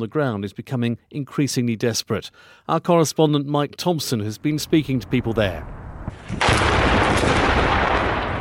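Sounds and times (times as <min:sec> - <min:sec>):
speech: 0:00.0 - 0:07.4
heavy roaring rumble: 0:04.5 - 0:08.3
explosive barrel bomb dropped by a helicopter exploding: 0:05.6 - 0:08.3.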